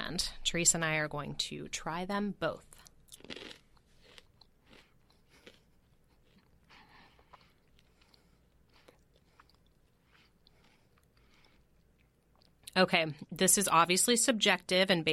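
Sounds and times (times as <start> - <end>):
speech: 0.1 - 3.4, 12.8 - 15.1
crunching of mini pretzel twists during a taste test: 2.8 - 12.6.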